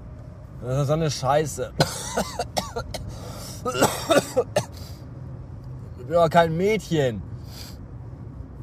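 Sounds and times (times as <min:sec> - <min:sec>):
speech: 0:00.6 - 0:04.8, 0:06.1 - 0:07.3
man with a sore throat and fever coughing in rough bursts: 0:01.8 - 0:04.8.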